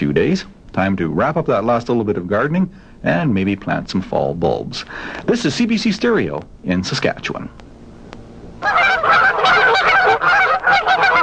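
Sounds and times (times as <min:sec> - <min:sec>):
speech: 0:00.0 - 0:07.6
flock of geese honking: 0:08.6 - 0:11.2.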